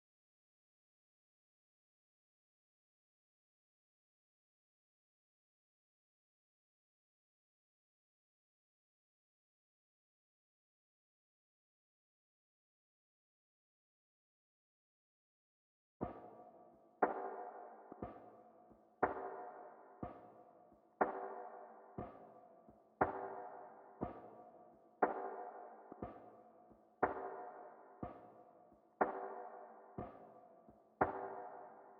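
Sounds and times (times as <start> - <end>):
120 BPM percussion loop in G minor: 16.0 - 31.9.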